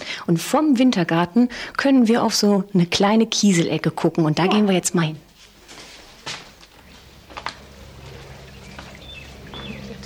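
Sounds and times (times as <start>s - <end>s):
speech: 0.3s - 5.3s
brook water babbling: 7.0s - 10.0s.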